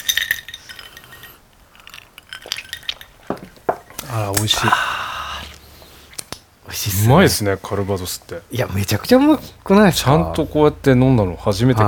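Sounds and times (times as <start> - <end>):
glasses of Calvados clinking in a toast: 0.0 - 4.0
speech: 3.4 - 5.0, 6.8 - 11.8.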